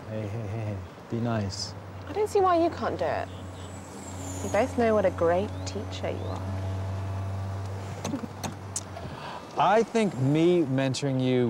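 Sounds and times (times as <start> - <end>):
speech: 0.1 - 3.4, 4.4 - 6.6, 9.6 - 11.4
steady low hum of a car: 1.7 - 10.8.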